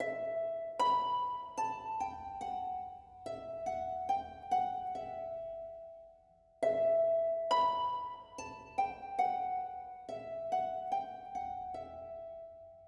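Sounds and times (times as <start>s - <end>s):
needolin melody loop: 0.0s - 6.0s, 6.6s - 12.7s.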